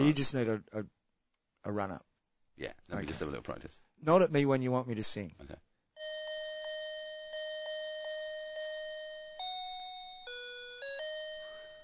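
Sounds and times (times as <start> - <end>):
speech: 0.0 - 1.0, 1.6 - 5.7
bell-like chime playing a melody: 6.0 - 11.8.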